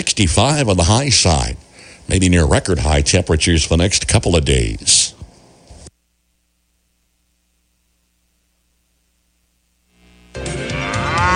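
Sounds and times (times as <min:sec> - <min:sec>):
rough hissy noise: 0:00.0 - 0:10.5
speech: 0:00.2 - 0:05.2
cow mooing: 0:10.6 - 0:11.3.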